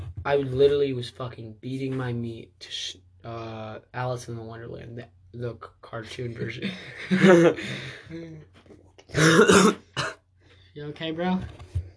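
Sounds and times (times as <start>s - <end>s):
speech: 0.2s - 10.1s, 10.8s - 11.6s
laughter: 6.3s - 8.1s
person coughing: 9.2s - 10.2s.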